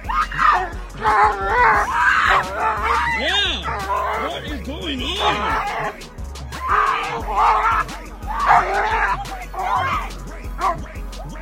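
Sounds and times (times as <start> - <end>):
agitated human voices: 0.0 - 11.3
laughter: 0.0 - 11.3
dog yelping and whimpering while being hit in a park: 0.1 - 4.5, 5.2 - 5.9, 6.6 - 10.0.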